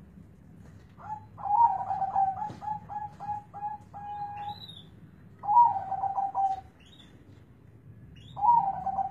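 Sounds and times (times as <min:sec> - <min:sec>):
zebra dove giving rolling trilled coos: 0:01.0 - 0:04.5, 0:05.4 - 0:06.7, 0:08.3 - 0:09.0.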